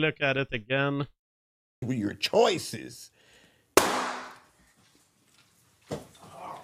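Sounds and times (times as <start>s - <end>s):
speech: 0.0s - 1.2s, 1.8s - 3.2s
gunshots with trailing echo: 3.8s - 4.4s.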